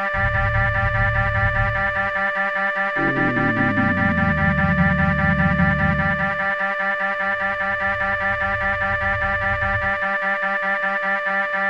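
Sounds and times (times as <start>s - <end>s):
drone in D: 0.1s - 2.3s, 2.9s - 11.5s.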